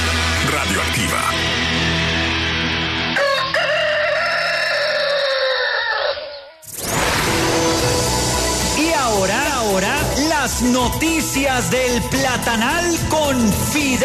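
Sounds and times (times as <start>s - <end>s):
music: 0.0s - 4.4s, 6.8s - 14.0s
rooster crowing: 3.1s - 6.6s
sudden burst of sound: 6.7s - 8.8s
speech: 10.6s - 14.0s.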